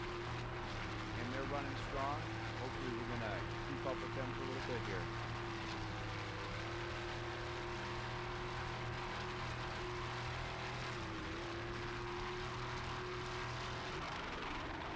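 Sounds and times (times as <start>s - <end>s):
racing powerboat engine droning and faltering during a race in Miami: 0.0s - 14.9s
speech: 1.5s - 5.3s.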